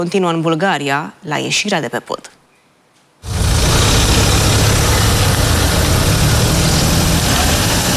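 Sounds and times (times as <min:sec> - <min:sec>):
speech: 0:00.0 - 0:02.4
car engines idling in the queue at a bridge toll station: 0:03.2 - 0:07.9.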